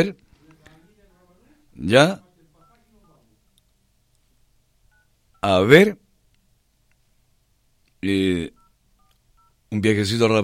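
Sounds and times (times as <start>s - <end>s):
speech: 0.0s - 0.2s, 1.8s - 2.2s, 5.4s - 6.0s, 8.0s - 8.6s, 9.7s - 10.4s
telephone keypad tone as a number is dialed: 4.9s - 5.5s, 8.5s - 9.6s.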